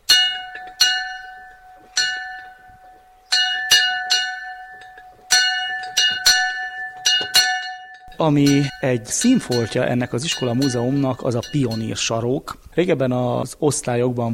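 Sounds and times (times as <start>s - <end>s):
school bell struck in metallic clangs: 0.0s - 12.4s
speech: 8.2s - 14.3s.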